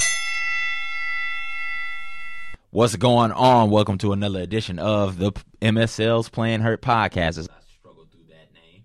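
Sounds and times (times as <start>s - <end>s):
bell strike ringing: 0.0s - 2.6s
speech: 2.7s - 7.6s.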